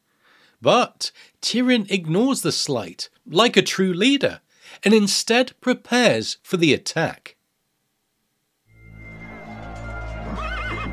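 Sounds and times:
speech: 0:00.6 - 0:07.4
big red stallion neighing: 0:10.1 - 0:10.9.

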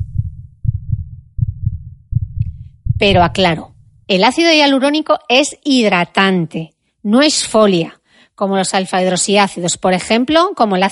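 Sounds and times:
low thumping heartbeat double-beats: 0:00.0 - 0:04.1
speech: 0:03.0 - 0:10.8.

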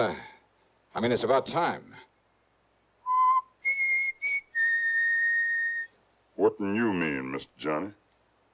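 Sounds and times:
speech: 0:00.0 - 0:00.3, 0:01.0 - 0:02.1, 0:06.4 - 0:08.0
person whistling a short tune: 0:03.1 - 0:05.9.

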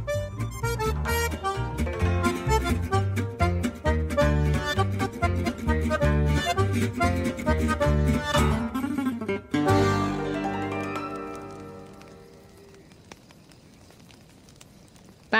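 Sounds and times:
campfire crackling at a camp: 0:00.0 - 0:15.3
sustained musical tones: 0:00.2 - 0:12.4.

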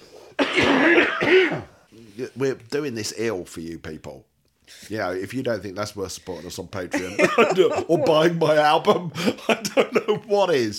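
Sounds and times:
person coughing: 0:00.4 - 0:01.7
speech: 0:00.6 - 0:10.7
laughter: 0:06.9 - 0:10.3.

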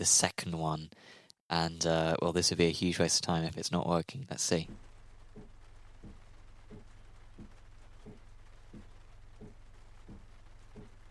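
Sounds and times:
speech: 0:00.0 - 0:04.9
quiet rain hiss in a racing game: 0:04.3 - 0:11.0
soft rhythmic thumps: 0:04.4 - 0:11.0.

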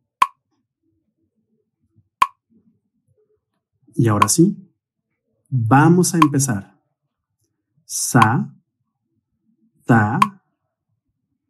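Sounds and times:
speech: 0:03.9 - 0:04.6, 0:05.5 - 0:06.7, 0:07.9 - 0:08.6, 0:09.9 - 0:10.3
metronome ticking: 0:04.0 - 0:04.6, 0:06.2 - 0:06.5, 0:10.1 - 0:10.4.

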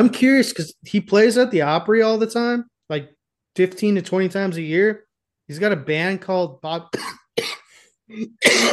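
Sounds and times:
speech: 0:00.0 - 0:08.7
person coughing: 0:06.9 - 0:08.7
rough throat clearing: 0:07.0 - 0:08.7.

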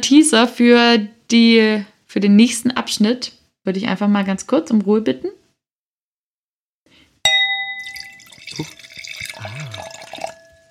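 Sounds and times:
speech: 0:00.0 - 0:05.4, 0:08.6 - 0:08.8
wine bottle clinking against a glass rim: 0:07.3 - 0:10.6
wine pouring into a glass: 0:07.6 - 0:10.6.

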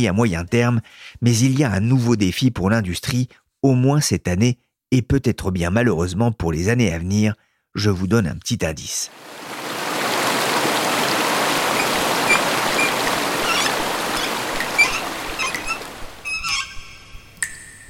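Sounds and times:
speech: 0:00.0 - 0:09.6
rain or rushing stream water effect: 0:09.1 - 0:16.7
honking bird calls: 0:10.6 - 0:17.1.

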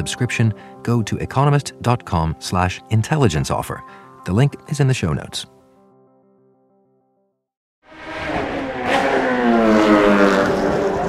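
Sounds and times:
speech: 0:00.0 - 0:05.6
Formula One racing car engines revving: 0:07.9 - 0:11.0.

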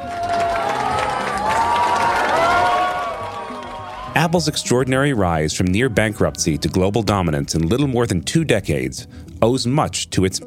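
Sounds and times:
people yelling: 0:00.0 - 0:05.2
crowd cheering at the opening of a new Apple store in Beijing China: 0:00.0 - 0:06.7
speech: 0:04.2 - 0:10.4.

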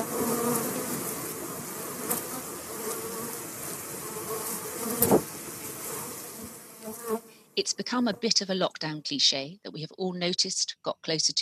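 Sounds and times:
bees buzzing: 0:00.0 - 0:08.6
speech: 0:07.6 - 0:11.4.

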